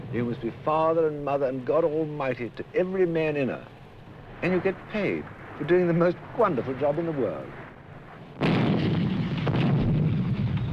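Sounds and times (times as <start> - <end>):
speech: 0.1 - 3.8, 4.4 - 7.6
heavy gunfire barrage of booming shots and sharp cracks: 8.3 - 10.7.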